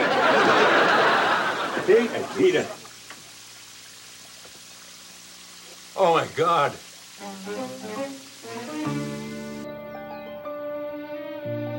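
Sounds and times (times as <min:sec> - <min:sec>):
laughter: 0:00.0 - 0:02.8
water running from a tap: 0:01.1 - 0:09.7
speech: 0:01.9 - 0:02.8, 0:06.2 - 0:09.1.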